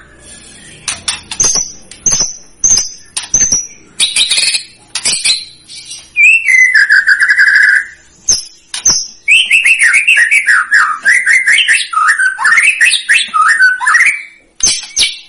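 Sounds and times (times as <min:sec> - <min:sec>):
strongly singing white-rumped shama with whistles and looping warbles: 0:00.0 - 0:15.2
sharp clicks: 0:00.8 - 0:05.4.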